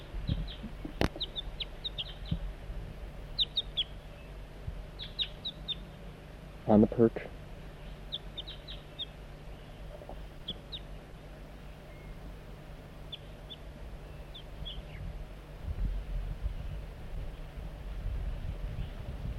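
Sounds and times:
soft brief bird flight calls: 0:00.0 - 0:02.5, 0:03.3 - 0:06.1, 0:07.7 - 0:12.3, 0:13.0 - 0:15.1
steady low outdoor rumble: 0:00.0 - 0:19.3
speech: 0:06.7 - 0:07.4.

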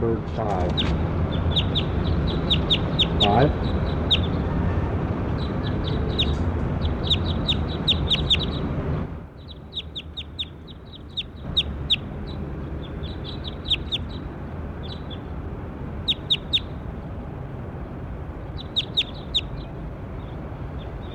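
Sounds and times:
speech: 0:00.0 - 0:01.2, 0:03.2 - 0:03.8
steady noise: 0:00.0 - 0:21.1
bird chirps: 0:00.7 - 0:04.5, 0:05.3 - 0:08.7, 0:09.4 - 0:15.3, 0:16.0 - 0:16.8, 0:18.4 - 0:21.1.

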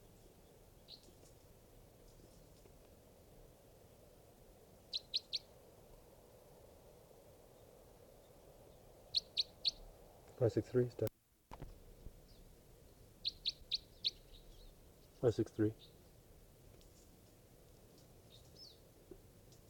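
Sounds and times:
crossbill giving sharp high clipped call notes: 0:04.9 - 0:05.5, 0:09.1 - 0:09.8, 0:13.2 - 0:16.0
speech: 0:10.4 - 0:11.1, 0:15.2 - 0:16.0.

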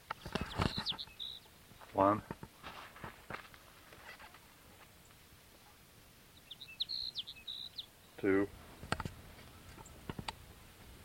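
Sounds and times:
steady hiss: 0:00.0 - 0:11.0
Sage Sparrow song with thin high chirping notes: 0:00.1 - 0:01.6, 0:05.0 - 0:08.2
speech: 0:02.0 - 0:02.4.

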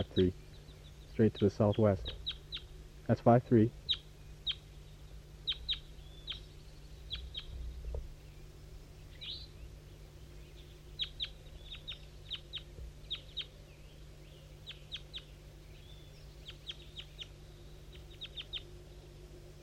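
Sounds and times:
speech: 0:00.0 - 0:00.4, 0:01.2 - 0:02.2, 0:03.1 - 0:03.8
repeated short high-pitched bird calls: 0:00.0 - 0:02.8, 0:03.8 - 0:08.4, 0:09.0 - 0:18.9
juvenile birds chirping softly: 0:00.0 - 0:19.6
steady low hum: 0:00.0 - 0:19.6.

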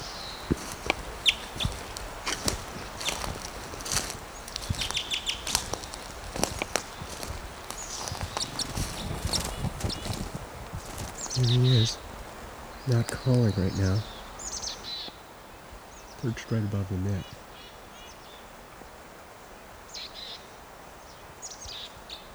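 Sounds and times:
rustling outdoors: 0:00.0 - 0:14.9
crunching footsteps of a person running outdoors: 0:00.0 - 0:15.0, 0:16.2 - 0:17.4
small male bird giving sharp alarm chips: 0:00.0 - 0:15.2
speech: 0:11.5 - 0:12.0, 0:12.9 - 0:14.1, 0:16.2 - 0:17.4.

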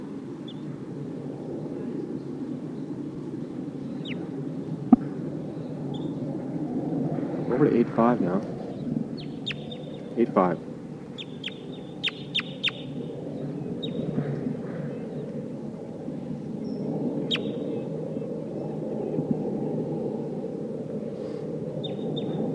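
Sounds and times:
low rumble of noise: 0:00.0 - 0:22.5
speech: 0:07.6 - 0:08.6, 0:10.2 - 0:10.7
crossbill soft calls: 0:09.2 - 0:13.0, 0:17.3 - 0:17.6.

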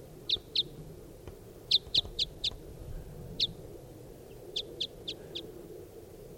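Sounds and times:
type 5 bird repeating short high chirps above the camp: 0:00.3 - 0:00.8, 0:01.7 - 0:02.6, 0:03.4 - 0:03.6, 0:04.3 - 0:05.5.

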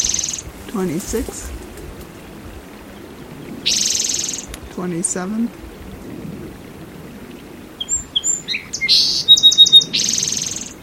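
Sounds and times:
song sparrow singing: 0:00.0 - 0:01.0, 0:02.9 - 0:04.9, 0:07.8 - 0:10.8
speech: 0:00.7 - 0:01.6, 0:04.8 - 0:05.6.

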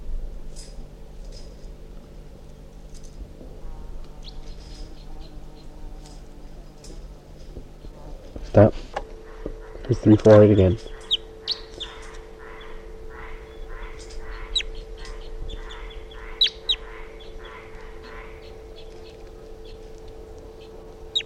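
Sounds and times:
steady low hum: 0:00.0 - 0:21.2
wild bird calling weakly: 0:04.2 - 0:05.8, 0:09.2 - 0:19.9, 0:20.5 - 0:21.2
speech: 0:08.6 - 0:08.9, 0:09.9 - 0:10.9.

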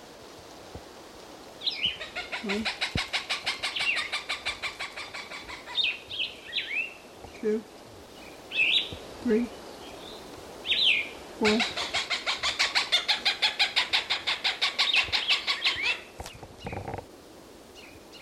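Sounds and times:
plumbeous bird calls: 0:01.6 - 0:07.4, 0:08.2 - 0:17.0
speech: 0:01.8 - 0:02.9, 0:07.4 - 0:07.8, 0:09.2 - 0:09.6, 0:11.4 - 0:11.8
Cooper's hawk calling: 0:01.9 - 0:06.0, 0:11.4 - 0:16.8.

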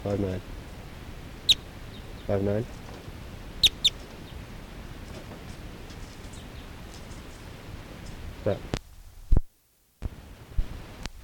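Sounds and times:
speech: 0:00.0 - 0:00.6, 0:02.3 - 0:02.8, 0:08.4 - 0:08.8
hiss: 0:00.0 - 0:11.2
bird calling with short high chirps: 0:01.4 - 0:02.9, 0:03.6 - 0:04.5, 0:05.9 - 0:07.4.

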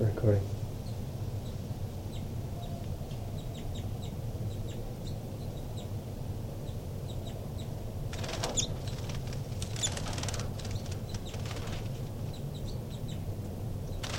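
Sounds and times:
low steady hum: 0:00.0 - 0:14.1
baby birds chirping while climbing a screen near their nest: 0:00.8 - 0:06.0, 0:06.6 - 0:14.1
baby birds fluttering and rustling: 0:08.1 - 0:12.3, 0:14.0 - 0:14.1.

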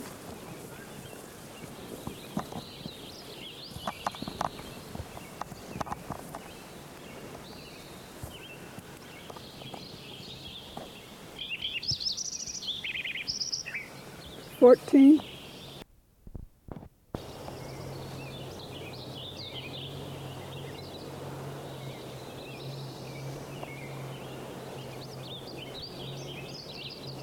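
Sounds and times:
sparrow singing high trilling phrases: 0:00.5 - 0:15.8, 0:17.2 - 0:27.2
bird chirps: 0:00.7 - 0:15.8, 0:17.2 - 0:27.2
speech: 0:14.6 - 0:15.3.

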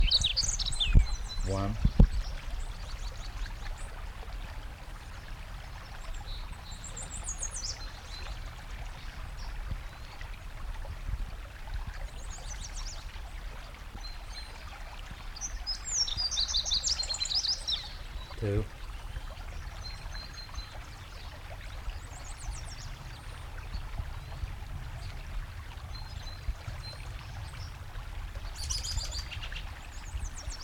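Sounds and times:
fox sparrow singing: 0:00.0 - 0:03.3, 0:15.4 - 0:18.4, 0:28.5 - 0:30.6
running water: 0:00.0 - 0:30.6
speech: 0:01.5 - 0:01.9.

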